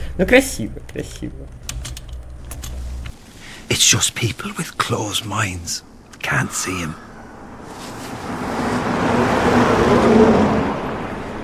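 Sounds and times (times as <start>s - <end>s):
speech: 0.2s - 1.7s, 3.7s - 7.1s
single car driving past: 7.2s - 11.4s.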